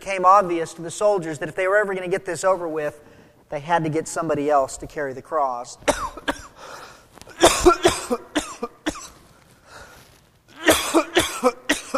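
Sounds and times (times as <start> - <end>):
speech: 0.1 - 6.4
person coughing after bread went down the wrong pipe: 5.8 - 6.7, 7.3 - 9.2, 10.5 - 11.9.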